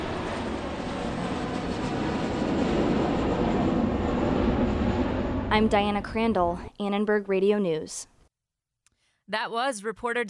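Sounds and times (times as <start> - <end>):
jet plane taking off at an airport: 0.0 - 6.7
speech: 5.6 - 8.1, 9.3 - 10.2.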